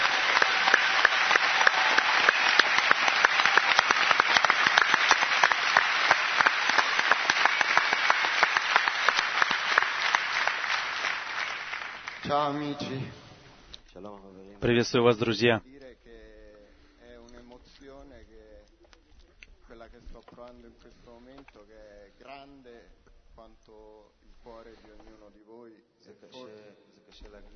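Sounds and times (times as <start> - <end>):
large audience clapping: 0.0 - 13.1
speech: 12.3 - 13.2, 14.0 - 15.6, 19.9 - 27.5.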